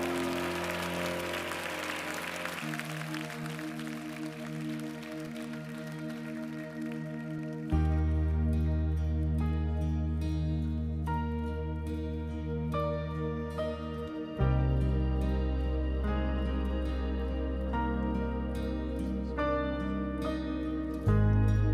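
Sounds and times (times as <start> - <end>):
church congregation clapping hands in praise during a worship service: 0.0 - 7.8
sustained loud musical chords: 0.0 - 21.7.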